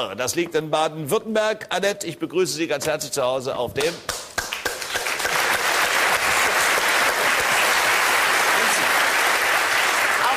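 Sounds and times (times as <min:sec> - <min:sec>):
speech: 0:00.0 - 0:04.3
applause from many hands clapping: 0:03.8 - 0:10.3.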